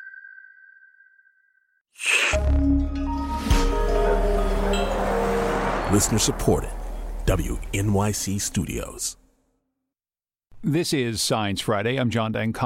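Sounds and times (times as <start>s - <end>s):
loud dense burst of music: 2.1s - 8.6s
bright advertising jingle whistle: 3.2s - 8.6s
speech: 5.9s - 9.2s, 10.6s - 12.6s.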